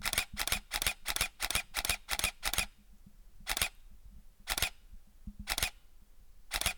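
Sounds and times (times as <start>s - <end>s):
Canon EOS Rebel T5 camera shutter firing in burst mode: 0.0s - 2.7s, 3.5s - 3.7s, 6.5s - 6.7s.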